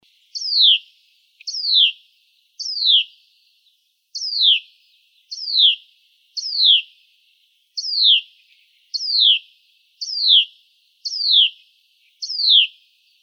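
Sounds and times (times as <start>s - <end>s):
Hutton's vireo calling with sharp descending notes: 0.3s - 2.0s, 2.6s - 3.2s, 4.2s - 4.7s, 5.3s - 5.8s, 6.4s - 6.9s, 7.8s - 13.2s.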